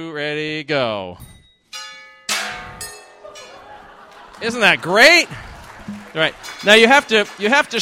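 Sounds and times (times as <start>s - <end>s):
speech: 0.0s - 1.3s, 4.4s - 7.8s
handbells rung by a group in turn down the line: 1.3s - 3.8s
laughter: 3.2s - 7.8s.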